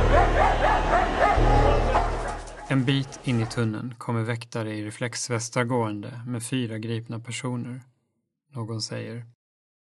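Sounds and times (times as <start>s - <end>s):
dog barking during a chase along a railway platform: 0.0s - 2.8s
speech: 2.7s - 7.9s, 8.5s - 9.4s.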